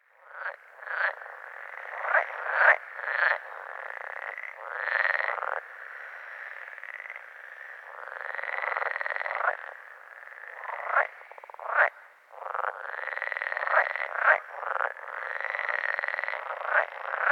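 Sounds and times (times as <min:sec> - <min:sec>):
edible frog croaking: 0:00.1 - 0:17.3.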